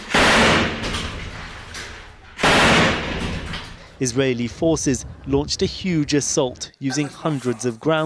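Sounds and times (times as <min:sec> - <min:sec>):
gunfire or explosion blasts with rumbling echo: 0:00.1 - 0:01.0, 0:02.4 - 0:03.6
speech: 0:04.0 - 0:08.0.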